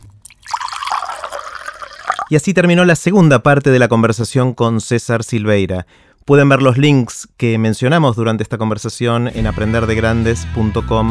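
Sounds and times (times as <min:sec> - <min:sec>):
water pouring into a glass: 0:00.0 - 0:02.5, 0:06.4 - 0:06.8
speech: 0:02.3 - 0:11.0.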